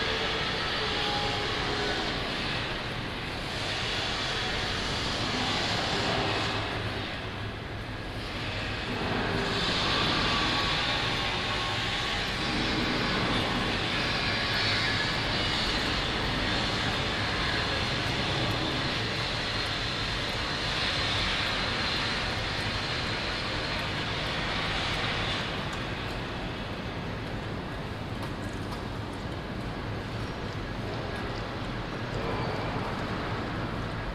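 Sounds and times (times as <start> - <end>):
construction work at a big building excavation: 0.0 - 34.1
traffic around a building excavation: 0.0 - 34.1.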